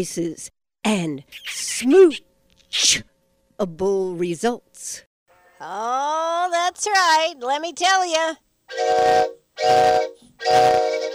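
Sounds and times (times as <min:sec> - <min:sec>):
speech: 0:00.0 - 0:11.1
train whistle blasts: 0:08.7 - 0:11.1.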